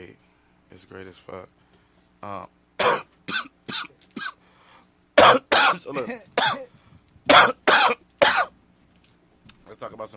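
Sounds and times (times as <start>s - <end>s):
speech: 0.1s - 3.0s, 5.7s - 8.0s, 9.7s - 10.1s
harsh hacking coughs after smoking weed: 2.8s - 4.4s, 5.2s - 6.7s, 7.3s - 8.6s.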